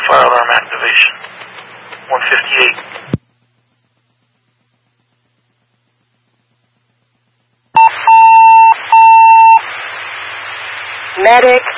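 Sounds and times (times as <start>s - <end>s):
soft radio hiss: 0.0s - 5.5s, 7.8s - 11.7s
speech: 0.1s - 1.3s, 2.2s - 2.9s, 11.2s - 11.7s
fire department dispatch alert tones: 7.8s - 9.6s.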